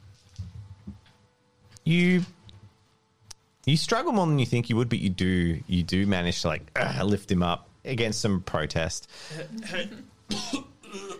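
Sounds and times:
speech: 1.8s - 2.4s, 3.7s - 11.0s
person hacking coughs: 9.6s - 11.1s.

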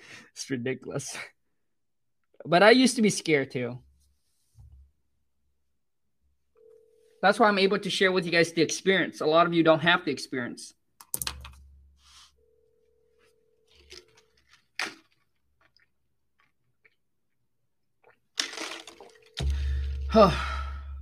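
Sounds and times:
speech: 0.4s - 1.4s, 2.4s - 3.9s, 7.2s - 11.3s, 20.1s - 20.5s
phone line ringback tones on an unanswered call: 6.6s - 7.4s, 12.1s - 14.4s.

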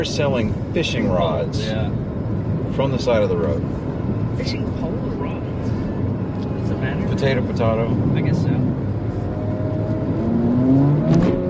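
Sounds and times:
speech: 0.0s - 2.1s, 2.7s - 5.8s, 6.8s - 8.5s
car engines revving: 0.0s - 11.4s.

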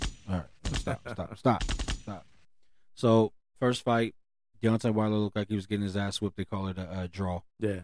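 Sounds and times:
person imitating gunfire with mouth-made bursts: 0.0s - 2.3s
speech: 0.8s - 2.2s, 3.0s - 7.8s.

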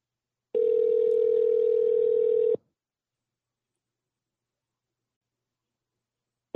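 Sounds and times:
steady electronic ringback tone of an outgoing phone call to a restaurant: 0.6s - 2.6s.

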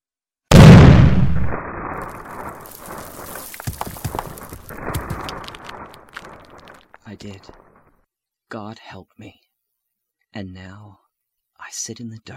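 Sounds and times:
furnace explosion: 0.5s - 7.8s
rumbling: 0.5s - 7.9s
scattered crackling debris: 0.5s - 8.0s
speech: 7.1s - 7.7s, 8.5s - 9.4s, 10.3s - 11.0s, 11.6s - 12.3s.

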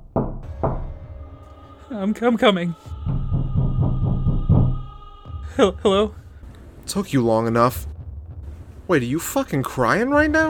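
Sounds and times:
firm knocks on a door: 0.0s - 1.0s, 2.9s - 4.9s
speech: 1.9s - 3.2s, 5.6s - 6.2s, 6.9s - 7.9s, 8.9s - 10.4s.

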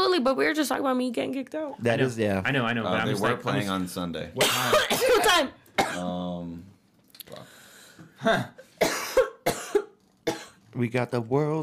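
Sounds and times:
speech: 0.2s - 6.7s, 8.2s - 8.6s, 10.8s - 11.6s
harsh sharp breathy coughs: 4.4s - 6.1s, 8.2s - 10.6s.

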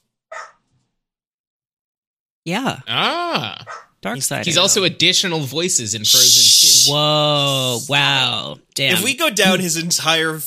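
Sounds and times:
single sharp dog bark: 0.3s - 0.6s, 3.7s - 3.9s
speech: 2.4s - 10.4s.

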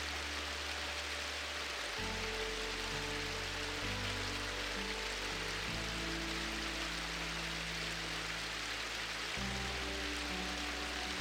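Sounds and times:
flowing water hissing: 0.0s - 11.2s
soft low melody in slow held tones: 0.0s - 11.2s.

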